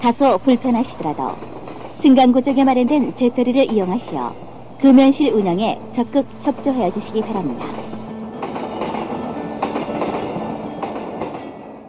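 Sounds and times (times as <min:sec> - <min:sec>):
speech: 0:00.0 - 0:07.8
Saemaul express passenger train rumbling on rails: 0:00.0 - 0:11.8.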